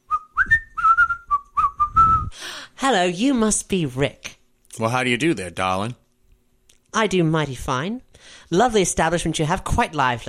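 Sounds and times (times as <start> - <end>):
person whistling a lively tune while walking: 0.0 - 2.3
speech: 2.8 - 6.0, 6.9 - 10.2.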